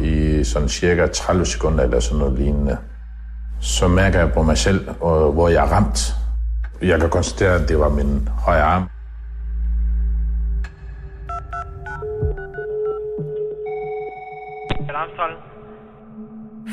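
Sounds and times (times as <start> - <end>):
low droning hum: 0.0 - 11.2
speech: 0.5 - 2.9, 3.6 - 6.2, 6.8 - 9.0
telephone ringing: 11.3 - 14.9.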